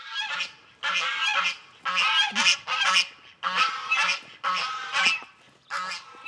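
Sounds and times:
wild geese honking: 0.1 - 6.2.

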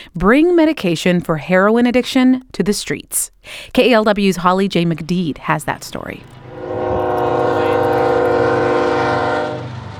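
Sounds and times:
speech: 0.1 - 6.9
train horn blast in Bay Point by the Delta, Contra Costa County: 6.4 - 9.9.

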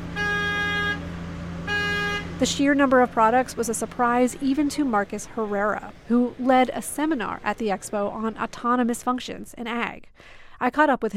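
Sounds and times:
autonomous pesticide sprayer vehicle horn honking: 0.0 - 4.8
constant low engine rumble: 0.0 - 8.7
speech: 2.4 - 11.1.

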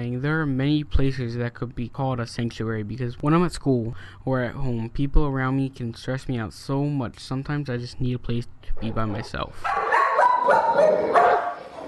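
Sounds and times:
speech: 0.0 - 9.8, 10.4 - 11.4
pit bull and another dog barking at home: 9.1 - 11.8.

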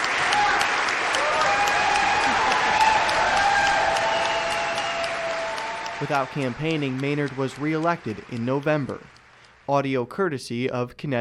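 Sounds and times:
faint cheers or voices: 0.0 - 8.2
large crowd of lawmakers applauding: 0.0 - 10.0
speech: 6.0 - 11.2.

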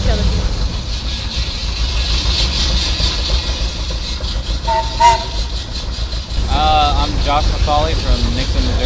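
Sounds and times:
17 horsepower jumbo steam engine running: 0.0 - 8.8
metallic squeal and clank: 0.7 - 6.5
speech: 7.2 - 8.8.

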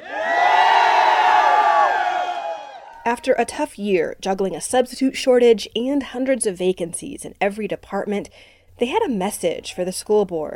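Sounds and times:
large crowd cheering and shouting outdoors at a teachers union rally: 0.0 - 3.0
speech: 3.2 - 10.5.

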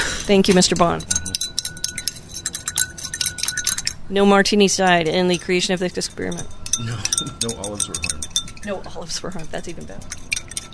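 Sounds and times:
speech: 0.3 - 1.2, 4.1 - 10.3
salt being stirred to dissolve it in an experimental solution: 0.4 - 4.0, 5.8 - 8.7, 9.4 - 10.7.

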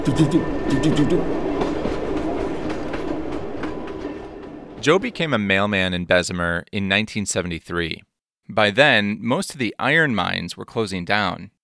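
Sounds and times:
speech: 0.0 - 1.4, 4.8 - 11.6
freight train wheels clacking over rail joints: 0.0 - 5.3.

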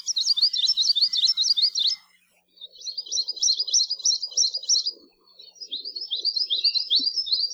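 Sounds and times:
Anianiau singing sweet fast trill: 0.0 - 4.8.

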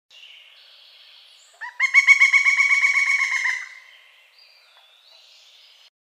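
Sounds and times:
pileated woodpecker call: 1.5 - 4.0.

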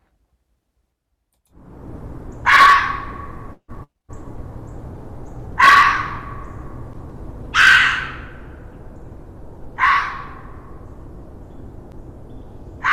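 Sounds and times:
steady background hiss: 0.0 - 12.9
red fox screaming for mates in late winter: 2.4 - 3.6, 5.6 - 6.5, 7.5 - 8.6, 9.8 - 10.7.

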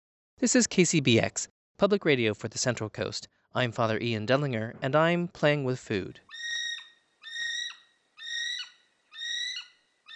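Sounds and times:
speech: 0.4 - 6.2
kiwi flightless bird giving shrill whistled calls: 6.3 - 10.1.

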